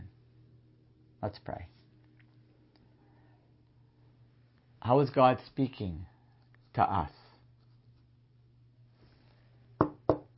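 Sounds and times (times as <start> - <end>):
speech: 1.2 - 1.8, 4.8 - 6.1, 6.8 - 7.2
firm knocking on a door: 9.8 - 10.3.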